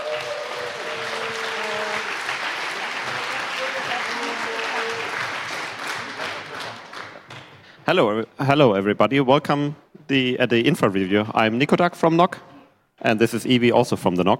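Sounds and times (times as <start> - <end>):
audience applause: 0.0 - 7.6
speech: 7.9 - 14.3.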